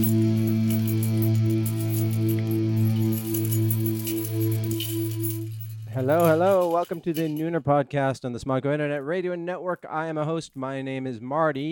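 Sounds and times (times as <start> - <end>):
loud humming drone: 0.0 - 6.5
bunch of keys jangling: 0.0 - 7.5
speech: 6.1 - 11.7.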